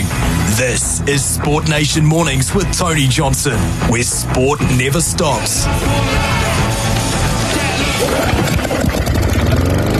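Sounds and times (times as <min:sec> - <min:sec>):
speech: 0:00.6 - 0:06.7, 0:08.0 - 0:09.0
lawnmower engine sputtering and chugging: 0:06.1 - 0:09.9.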